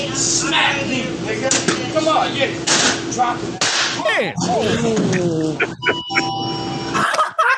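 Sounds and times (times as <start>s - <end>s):
speech: 0.2s - 6.4s
laughter: 4.0s - 7.5s
door chime ringing: 5.8s - 7.0s.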